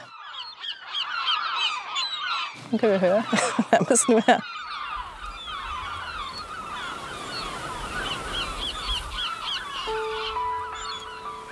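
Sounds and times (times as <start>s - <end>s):
gulls crying along the shore: 0.0s - 11.4s
speech: 2.7s - 4.5s
person laughing: 3.3s - 4.4s.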